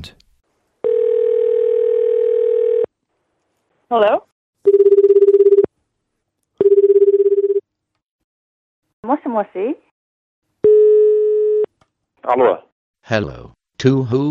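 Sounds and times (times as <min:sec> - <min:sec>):
speech: 0:00.0 - 0:00.2, 0:03.9 - 0:04.9, 0:09.0 - 0:09.8, 0:12.2 - 0:14.2
telephone dial tone: 0:00.8 - 0:02.9, 0:04.7 - 0:05.7, 0:06.6 - 0:07.6, 0:10.6 - 0:11.7.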